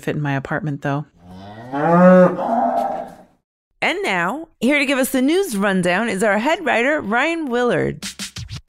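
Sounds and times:
speech: 0.0s - 2.9s, 3.8s - 8.2s
cow mooing: 1.2s - 3.3s.

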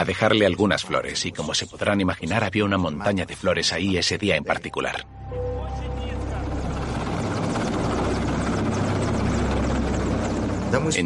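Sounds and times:
speech: 0.0s - 5.2s, 10.7s - 11.0s
helicopter rotor thumping while hovering overhead: 6.4s - 11.0s.

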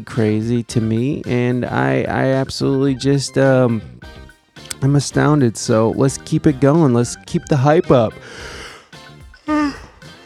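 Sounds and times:
speech: 0.0s - 8.6s
person yawning: 9.4s - 10.2s.

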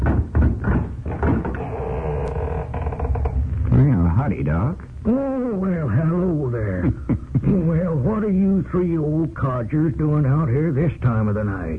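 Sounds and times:
wooden knocks and clatters of a door: 0.0s - 1.8s
door being unlatched at night: 0.0s - 3.5s
door creaking with a scrape as it swings open: 0.0s - 4.0s
speech: 4.2s - 11.7s.

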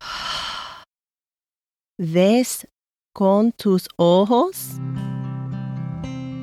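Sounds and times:
loud breathy exhale: 0.0s - 0.9s
speech: 2.0s - 5.1s.

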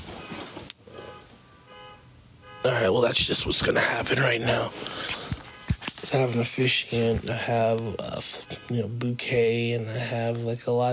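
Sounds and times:
car alarm sounding outdoors: 0.9s - 3.2s, 5.4s - 5.8s, 8.0s - 8.9s
speech: 2.6s - 5.2s, 6.1s - 10.9s.

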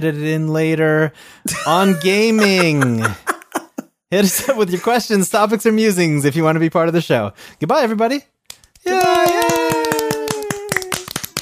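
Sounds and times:
speech: 0.0s - 3.3s, 4.1s - 9.6s
laughter: 1.5s - 5.0s
sharp hand claps: 8.5s - 11.4s.

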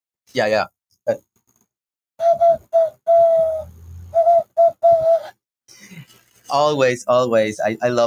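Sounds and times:
speech: 0.3s - 1.3s, 2.2s - 8.0s
person blowing into cupped hands imitating a dove call: 2.2s - 6.0s.

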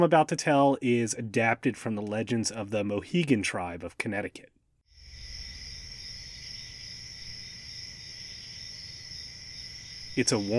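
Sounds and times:
speech: 0.0s - 4.6s, 10.2s - 10.5s
chorus of crickets chirping at night: 4.9s - 10.5s.

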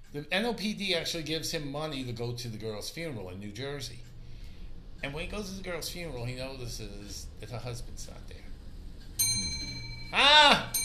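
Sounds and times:
speech: 0.1s - 4.1s, 5.0s - 8.4s, 10.1s - 10.7s
clock chiming with metallic tones: 9.2s - 10.8s.

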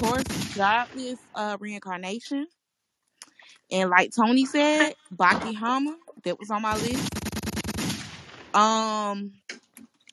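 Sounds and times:
loud rough burst of gunfire: 0.0s - 1.0s, 6.6s - 8.9s
speech: 0.0s - 2.6s, 3.7s - 7.2s, 8.5s - 9.4s.

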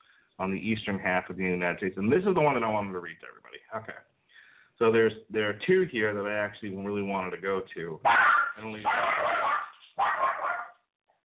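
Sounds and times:
speech: 0.4s - 4.1s, 4.8s - 9.4s
dog barking: 8.0s - 10.8s.

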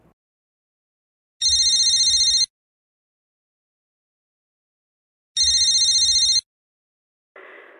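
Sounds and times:
telephone ringing with electronic trill: 1.4s - 2.5s, 5.4s - 6.5s.

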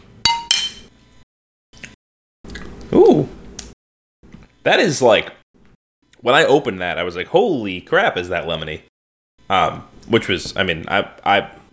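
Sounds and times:
glasses clinking in a toast: 0.3s - 0.9s
speech: 4.6s - 5.4s, 6.2s - 8.9s, 9.5s - 11.6s.

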